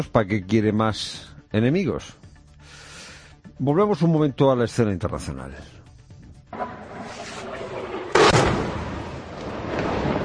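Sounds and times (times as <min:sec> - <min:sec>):
speech: 0:00.0 - 0:02.2, 0:03.6 - 0:05.8
bomb explosions from Russian air strikes in Syria: 0:06.6 - 0:10.2.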